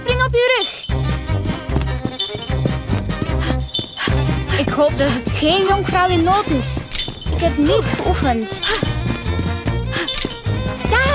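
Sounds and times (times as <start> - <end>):
bunch of keys rattling and jingling: 0.4 - 4.2, 6.7 - 10.9
speech: 4.8 - 6.8, 7.4 - 8.8.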